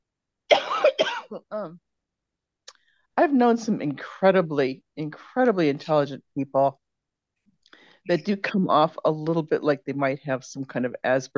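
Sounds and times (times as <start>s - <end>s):
harsh coughs: 0.5s - 1.4s
speech: 1.3s - 1.9s, 3.2s - 6.8s, 8.0s - 11.3s.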